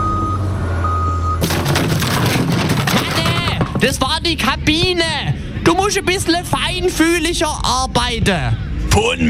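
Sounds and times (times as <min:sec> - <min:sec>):
crane truck reversing beeps: 0:00.0 - 0:01.4
broadband crane truck machine noise: 0:01.4 - 0:04.6
speech: 0:03.8 - 0:09.2.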